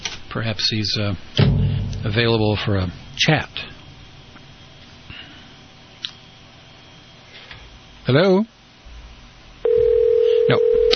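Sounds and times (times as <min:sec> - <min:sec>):
speech: 0:00.4 - 0:03.7, 0:08.1 - 0:08.6
telephone ringing tone on a call: 0:09.6 - 0:10.9.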